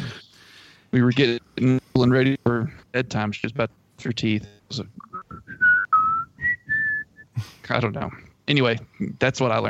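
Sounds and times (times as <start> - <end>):
speech: 0.9 - 5.5, 7.7 - 9.6
person whistling a short tuneful melody like a film theme: 5.0 - 7.3.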